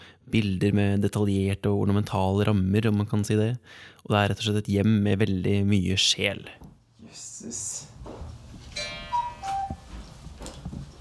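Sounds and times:
speech: 0:00.3 - 0:07.9
cuckoo clock two-note falling call in a home: 0:08.8 - 0:09.8.

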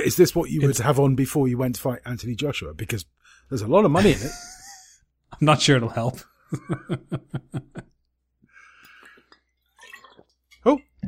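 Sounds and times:
speech: 0:00.0 - 0:04.6, 0:05.4 - 0:07.9, 0:10.6 - 0:11.0
laughter: 0:04.0 - 0:05.0, 0:06.5 - 0:07.9
person gulping and swallowing water from a metal tin: 0:08.8 - 0:11.0.

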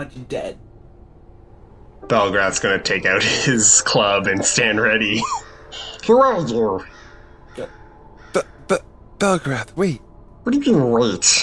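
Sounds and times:
speech: 0:00.0 - 0:00.7, 0:02.0 - 0:07.0, 0:07.6 - 0:07.8, 0:08.4 - 0:11.4
raven cawing: 0:05.2 - 0:09.2.

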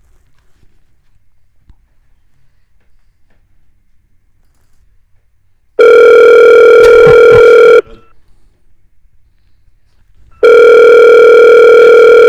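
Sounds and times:
long loud electronic telephone ringback tones: 0:05.8 - 0:08.1, 0:10.4 - 0:12.2.

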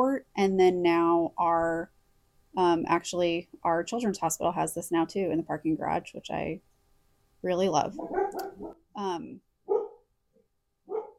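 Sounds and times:
speech: 0:00.0 - 0:02.0, 0:02.6 - 0:06.7, 0:07.4 - 0:09.5
household dog barking: 0:08.0 - 0:08.8, 0:09.7 - 0:10.0, 0:10.9 - 0:11.1.

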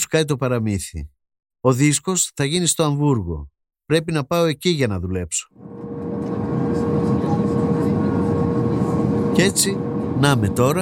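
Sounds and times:
speech: 0:00.1 - 0:06.4, 0:09.4 - 0:10.8
airplane engine drone inside cabin: 0:05.6 - 0:10.8.

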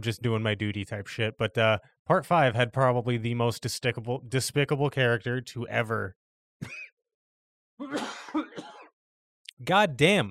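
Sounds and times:
speech: 0:00.0 - 0:06.8, 0:07.8 - 0:08.7, 0:09.6 - 0:10.2
raspy throaty coughing: 0:06.6 - 0:06.9, 0:07.8 - 0:09.0.

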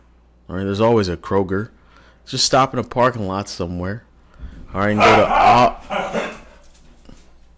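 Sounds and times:
speech: 0:00.5 - 0:04.1, 0:04.7 - 0:06.3
dog barking: 0:04.8 - 0:06.6.

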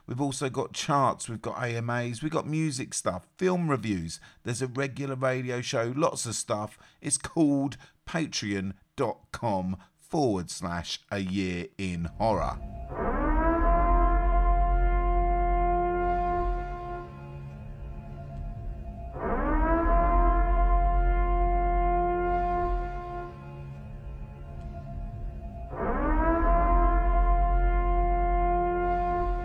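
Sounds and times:
speech: 0:00.1 - 0:13.0
civil-defense-style warning siren wailing: 0:12.1 - 0:29.4.

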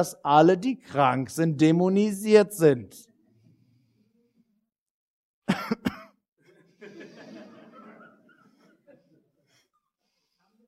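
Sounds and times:
speech: 0:00.0 - 0:03.1
harsh raspy coughing fit from one person: 0:05.5 - 0:06.2
laughter: 0:06.4 - 0:09.7.

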